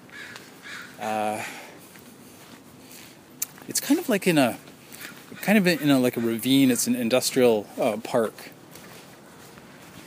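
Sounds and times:
crows cawing: 0:00.0 - 0:01.7, 0:04.9 - 0:07.0
steady outdoor noise: 0:00.0 - 0:10.0
speech: 0:01.0 - 0:01.6, 0:03.7 - 0:04.7, 0:05.5 - 0:08.6.

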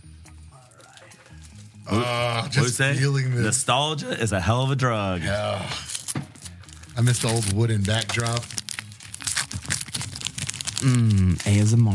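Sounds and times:
speech: 0:01.9 - 0:05.9, 0:07.0 - 0:08.6, 0:10.8 - 0:11.9
trading card pack wrapper being ripped open: 0:05.8 - 0:11.9.

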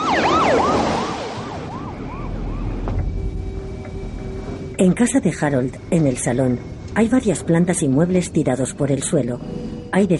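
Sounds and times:
police car siren wailing: 0:00.0 - 0:08.1
police car engine and road noise: 0:00.0 - 0:08.4
speech: 0:04.8 - 0:10.1.

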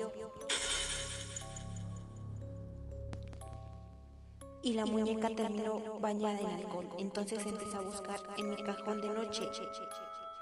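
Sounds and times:
glass wine bottle shattering: 0:00.5 - 0:01.8
glass fragments tinkling: 0:00.5 - 0:01.9
low steady hum: 0:00.5 - 0:05.0
speech: 0:04.6 - 0:10.2.

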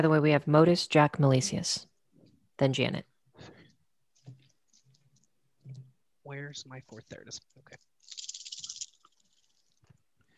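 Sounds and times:
speech: 0:00.0 - 0:01.9, 0:02.6 - 0:03.5, 0:06.3 - 0:08.2
dice rattling and clattering across a hard table: 0:08.0 - 0:09.6.

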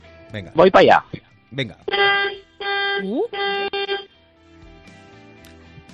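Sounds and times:
speech: 0:00.3 - 0:02.2, 0:03.0 - 0:03.7
car horn honking to test how the car sounds: 0:01.9 - 0:04.1.

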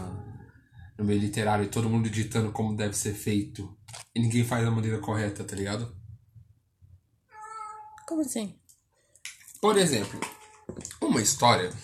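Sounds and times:
speech: 0:01.0 - 0:06.0, 0:08.1 - 0:08.6, 0:09.6 - 0:11.8
cat meowing: 0:07.3 - 0:08.2.

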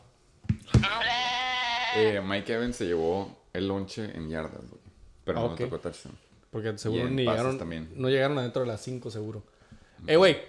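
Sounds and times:
goat bleating: 0:00.7 - 0:02.2
speech: 0:02.0 - 0:10.4.

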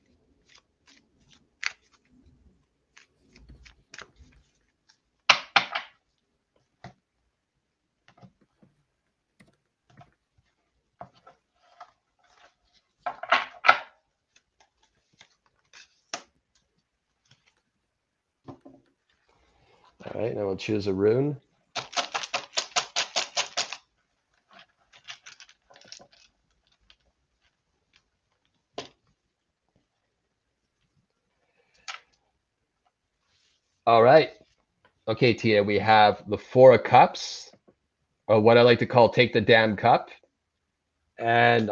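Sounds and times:
deck of tarot cards being shuffled: 0:00.0 - 0:05.0, 0:14.3 - 0:16.3, 0:21.8 - 0:28.5
speech: 0:20.2 - 0:21.4, 0:33.9 - 0:34.3, 0:35.1 - 0:37.5, 0:38.3 - 0:40.2, 0:41.2 - 0:41.7.

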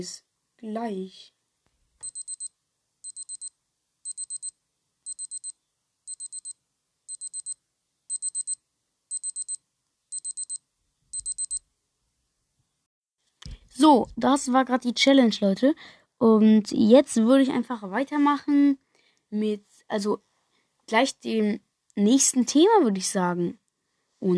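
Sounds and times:
speech: 0:00.0 - 0:01.4, 0:13.8 - 0:20.3, 0:20.9 - 0:23.6, 0:24.2 - 0:24.3
electronic alarm clock beeping high-pitched tones: 0:02.0 - 0:03.5, 0:04.1 - 0:04.5, 0:05.1 - 0:05.5, 0:06.1 - 0:10.6, 0:11.2 - 0:11.6.

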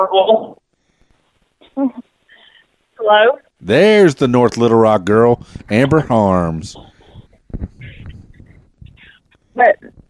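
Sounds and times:
speech: 0:00.0 - 0:00.6, 0:01.8 - 0:02.1, 0:03.0 - 0:06.9, 0:07.5 - 0:08.2, 0:09.6 - 0:10.0
phone-quality voice: 0:03.6 - 0:07.2.

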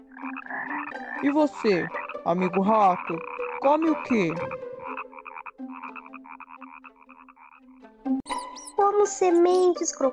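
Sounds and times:
toad croaking: 0:00.0 - 0:09.7
speech: 0:00.9 - 0:04.7, 0:09.0 - 0:10.1.

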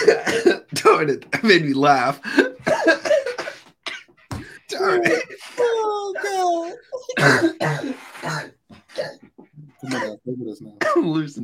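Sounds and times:
stifled cough: 0:00.0 - 0:01.0, 0:02.2 - 0:06.4, 0:07.0 - 0:10.2, 0:10.8 - 0:11.2
speech: 0:00.1 - 0:03.0, 0:04.8 - 0:08.5, 0:09.9 - 0:11.4.

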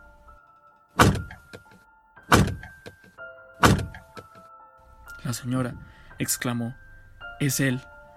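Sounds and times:
heavy booming knocks on a door: 0:03.6 - 0:04.0
speech: 0:05.3 - 0:06.8, 0:07.4 - 0:07.9.

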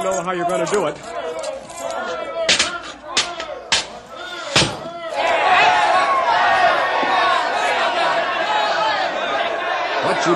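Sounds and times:
speech: 0:00.0 - 0:01.2
angry mob of young men shouting: 0:01.1 - 0:10.3
sharp thuds and bangs: 0:04.5 - 0:04.9.

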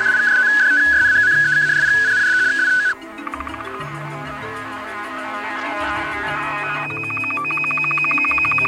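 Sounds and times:
sustained higher beep of a shortwave time signal: 0:00.0 - 0:03.8, 0:05.8 - 0:08.6
rapid regular ticking pulses of a shortwave time signal: 0:00.0 - 0:08.6
steady high electronic tone of a shortwave radio time signal: 0:00.0 - 0:08.6.

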